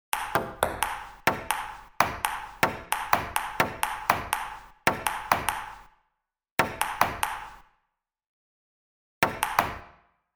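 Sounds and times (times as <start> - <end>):
ping pong ball bouncing: 0.2 - 5.9, 6.6 - 7.6, 9.2 - 9.8.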